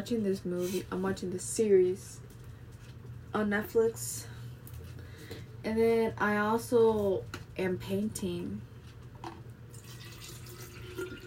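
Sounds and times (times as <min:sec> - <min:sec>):
speech: 0:00.0 - 0:02.3, 0:03.3 - 0:04.3, 0:05.6 - 0:08.7
water running into a water bottle: 0:09.7 - 0:11.2.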